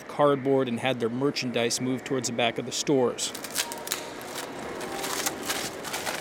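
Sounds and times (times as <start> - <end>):
speech: 0.2 - 3.8
tape ripped off a glass storefront window: 3.3 - 6.1.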